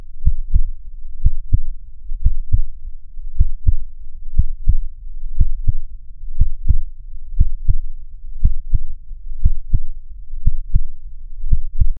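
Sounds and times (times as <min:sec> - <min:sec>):
infrequent heartbeat of a beast: 0:00.2 - 0:02.8, 0:03.4 - 0:11.9.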